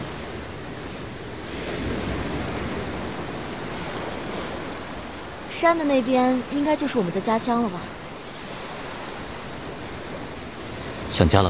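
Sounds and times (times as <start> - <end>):
ocean waves washing against the shore: 0.0 - 11.4
speech: 5.6 - 8.0, 11.2 - 11.4.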